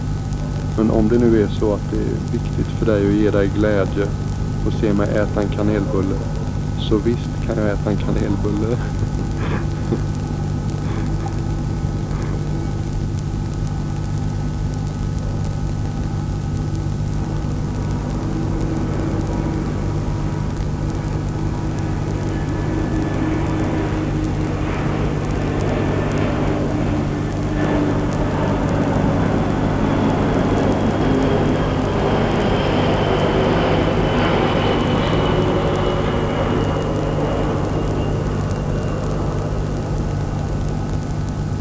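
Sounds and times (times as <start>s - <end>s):
high engine whine: 0.0s - 41.6s
speech: 0.8s - 9.0s, 9.9s - 10.2s
laughter: 8.1s - 10.2s
loud steady engine roar: 17.2s - 41.0s.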